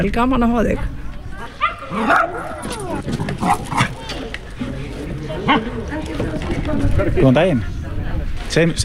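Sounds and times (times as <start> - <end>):
speech: 0.0 - 1.1, 1.9 - 3.9, 5.4 - 7.8, 8.5 - 8.8
dog barking and yipping: 1.6 - 4.0.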